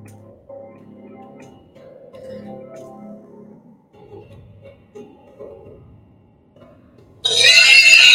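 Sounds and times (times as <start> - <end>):
man imitating pig with shrill squeal: 7.3 - 8.1.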